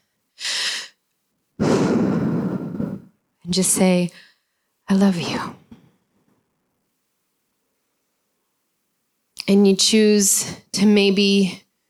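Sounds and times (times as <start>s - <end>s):
deep breath: 1.6s - 3.2s
speech: 3.5s - 4.3s, 4.9s - 5.6s, 9.5s - 11.6s.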